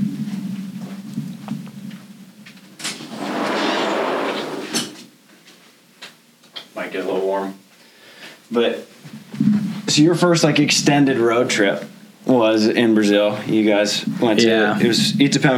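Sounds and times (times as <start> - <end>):
door closing: 2.8 - 5.1
speech: 6.9 - 7.6, 8.5 - 15.5.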